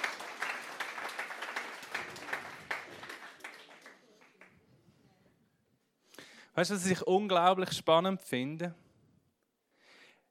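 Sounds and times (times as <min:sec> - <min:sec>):
small group applauding: 0:00.0 - 0:04.6
speech: 0:06.6 - 0:08.8.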